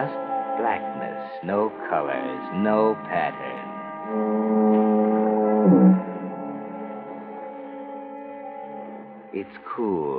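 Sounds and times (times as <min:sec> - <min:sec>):
speech: 0:00.0 - 0:05.0, 0:09.3 - 0:10.1
foghorn moaning: 0:02.1 - 0:07.5.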